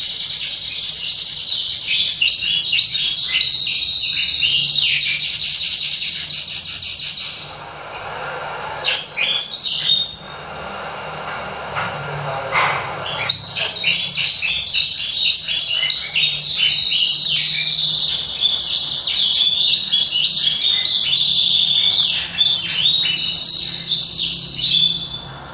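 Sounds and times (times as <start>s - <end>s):
Yorkshire canary warbling song of dense rolling trills: 0.0s - 25.5s.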